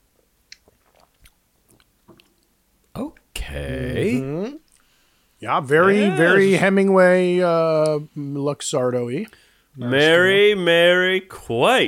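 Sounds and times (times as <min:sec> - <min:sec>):
swallow-like burst after sipping a drink: 0:00.5 - 0:02.3
soft wet lip and mouth clicks of someone sipping a drink: 0:00.5 - 0:02.5
speech: 0:03.5 - 0:04.6, 0:05.4 - 0:11.8.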